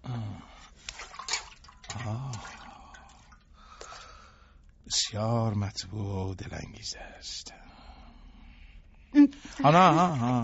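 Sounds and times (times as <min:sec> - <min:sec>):
feet being lowered into a basin of warm water: 0:00.7 - 0:04.4
water dripping: 0:00.8 - 0:04.8
speech: 0:04.9 - 0:07.6, 0:09.6 - 0:10.4.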